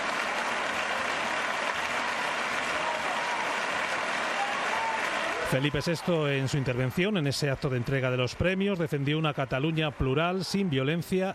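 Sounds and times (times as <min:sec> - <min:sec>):
large crowd applauding: 0:00.0 - 0:11.3
voices cheering and shouting: 0:02.7 - 0:11.3
speech: 0:05.5 - 0:11.3.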